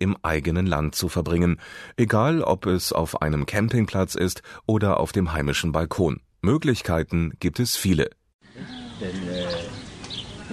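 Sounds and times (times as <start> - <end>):
speech: 0.0 - 9.7
birds chirping: 8.4 - 10.5.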